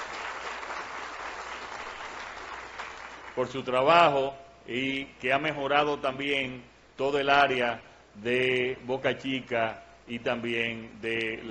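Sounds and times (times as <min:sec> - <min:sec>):
audience applause at a public works ceremony: 0:00.0 - 0:03.4
speech: 0:03.4 - 0:11.4.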